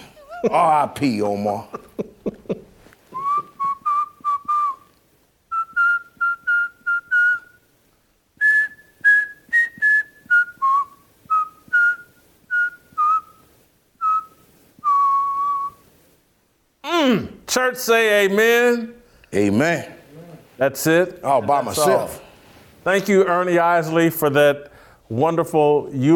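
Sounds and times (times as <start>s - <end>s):
speech: 0.4s - 1.8s, 17.5s - 19.9s, 20.6s - 22.2s, 22.8s - 26.1s
person whistling a bouncy melody: 3.1s - 4.9s, 5.5s - 7.6s, 8.4s - 13.4s, 14.0s - 15.8s.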